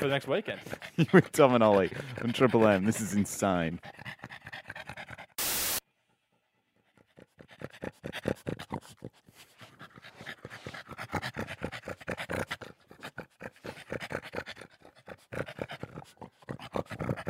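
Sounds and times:
speech: 0.0s - 4.4s
overweight pug panting in a radio studio: 0.0s - 17.2s
burst of noise: 5.4s - 5.8s.

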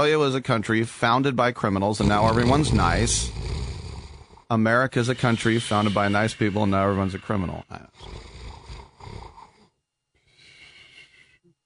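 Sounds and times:
speech: 0.0s - 3.5s, 4.5s - 8.3s
person imitating snoring: 2.0s - 9.7s.

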